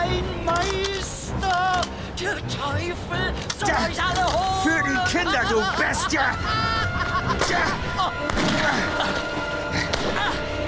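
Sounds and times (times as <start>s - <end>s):
speech: 0.1s - 9.3s
laughter: 4.7s - 10.6s
gunshots fired in the night: 8.2s - 9.1s, 9.9s - 10.5s.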